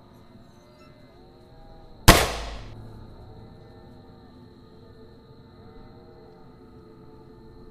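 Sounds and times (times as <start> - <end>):
loud gunshot with decay: 2.1 - 2.8.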